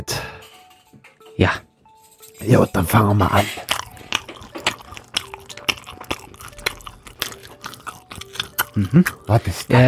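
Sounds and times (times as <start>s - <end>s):
speech: 1.4s - 1.7s, 2.4s - 3.7s, 8.8s - 9.8s
wet chewing of stuffed pork stomach: 3.2s - 9.8s
crisp crunching bites of stuffed pork stomach: 3.6s - 9.4s.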